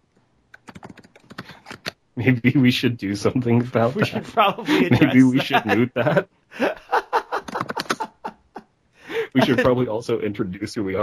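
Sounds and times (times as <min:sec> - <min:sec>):
computer keyboard typing: 0:00.6 - 0:02.0, 0:07.4 - 0:08.2
speech: 0:02.2 - 0:06.7, 0:09.4 - 0:11.0
laughter: 0:03.8 - 0:09.8.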